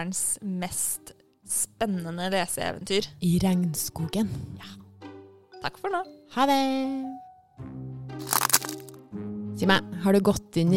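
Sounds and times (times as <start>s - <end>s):
speech: 0.0s - 4.8s, 5.6s - 8.3s, 9.6s - 10.7s
sharp crunchy cracks: 8.2s - 9.0s.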